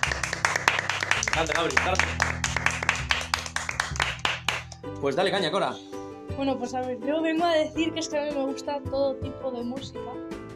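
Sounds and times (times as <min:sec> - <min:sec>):
small group clapping: 0:00.0 - 0:04.9
speech: 0:01.4 - 0:02.4, 0:04.8 - 0:10.3.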